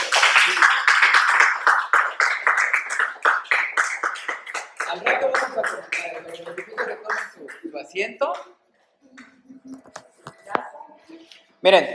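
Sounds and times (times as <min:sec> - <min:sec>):
small group of people clapping: 0:00.0 - 0:08.5
speech: 0:07.9 - 0:08.5, 0:11.6 - 0:11.9.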